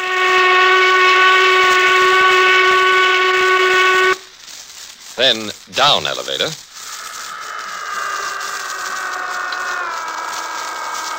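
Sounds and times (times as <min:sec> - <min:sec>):
noon work whistle blast: 0:00.0 - 0:04.2
speech: 0:05.2 - 0:06.6.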